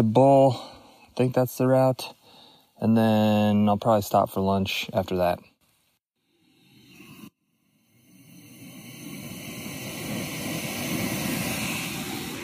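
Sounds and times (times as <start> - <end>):
speech: 0.0 - 2.2, 2.8 - 5.5
portable gas camping stove burner roaring: 7.8 - 12.4.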